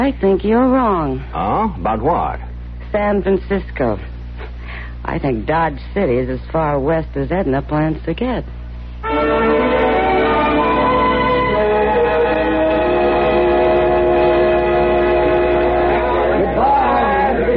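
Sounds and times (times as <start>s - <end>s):
speech: 0.0s - 4.1s, 5.0s - 9.4s
steam train whistle blowing: 9.0s - 17.5s.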